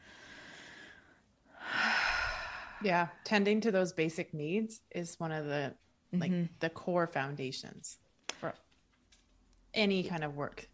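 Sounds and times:
slow deep breathing during a calming exercise: 0:00.0 - 0:03.1
speech: 0:02.8 - 0:08.6, 0:09.8 - 0:10.7.

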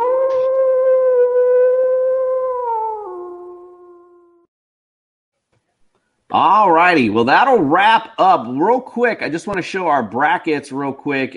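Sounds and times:
wolf howling: 0:00.0 - 0:04.5
speech: 0:06.3 - 0:11.3.

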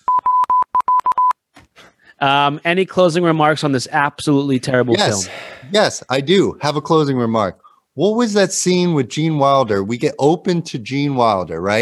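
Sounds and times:
loud high-pitched Morse code beeps: 0:00.1 - 0:01.4
speech: 0:02.2 - 0:11.8.

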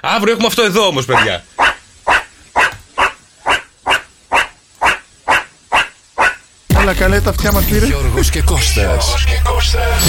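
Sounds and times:
speech: 0:00.0 - 0:01.5, 0:06.9 - 0:10.0
dog barking: 0:01.1 - 0:06.5.

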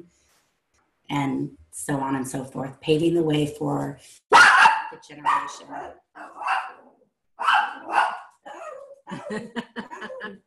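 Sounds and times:
speech: 0:01.1 - 0:04.2, 0:04.9 - 0:08.2, 0:09.1 - 0:10.4
dog barking: 0:04.3 - 0:09.0
laughter: 0:09.1 - 0:10.4.

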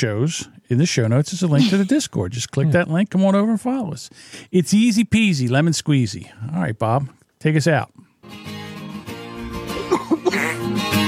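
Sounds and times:
speech: 0:00.0 - 0:08.5
short sharp coughs: 0:01.6 - 0:02.0, 0:09.8 - 0:10.7.

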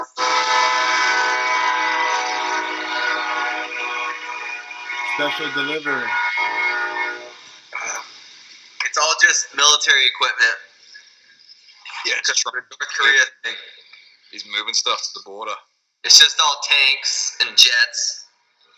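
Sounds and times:
train horn blast: 0:00.0 - 0:07.3
train passing: 0:00.4 - 0:06.1
speech: 0:05.2 - 0:06.2, 0:09.3 - 0:10.7, 0:12.1 - 0:18.2.

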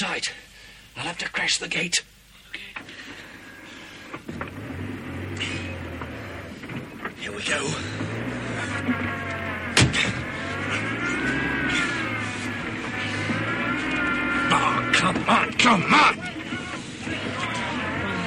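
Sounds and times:
speech: 0:00.0 - 0:02.1, 0:04.1 - 0:04.5, 0:07.3 - 0:08.2, 0:15.0 - 0:16.3
cold car engine revving and accelerating: 0:03.4 - 0:18.2
man shouting: 0:14.4 - 0:18.2.

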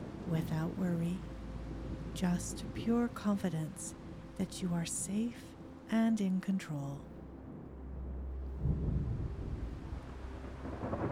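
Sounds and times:
low wind noise in a heavy thunderstorm: 0:00.0 - 0:11.1
steady rain in a heavy thunderstorm: 0:00.0 - 0:11.1
speech: 0:00.3 - 0:01.4, 0:02.2 - 0:07.1
rolling thunder in a heavy thunderstorm: 0:08.5 - 0:11.1.

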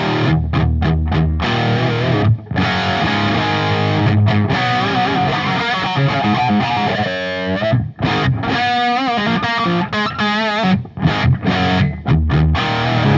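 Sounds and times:
loud distorted electric guitar through a copy of a '78 amplifier with master volume: 0:00.0 - 0:13.1.

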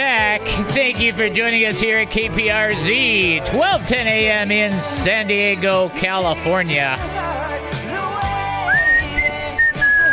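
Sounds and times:
steady music on a radio broadcast: 0:00.0 - 0:10.1
speech: 0:00.4 - 0:07.2
man whistling a tune on a Christian radio broadcast in San Diego California: 0:08.6 - 0:10.1.

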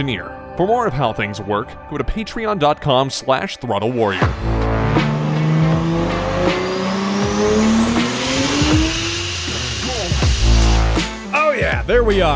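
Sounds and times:
speech: 0:00.0 - 0:04.6, 0:11.9 - 0:12.3
2JZ-swapped car engine revving with a rising whine: 0:04.1 - 0:11.4
tire noise: 0:04.3 - 0:11.0.

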